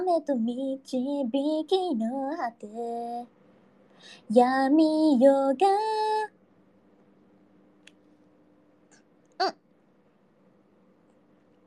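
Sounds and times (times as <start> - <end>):
speech: 0.0 - 3.4, 4.0 - 6.4, 9.4 - 9.6
small burp: 9.4 - 9.6.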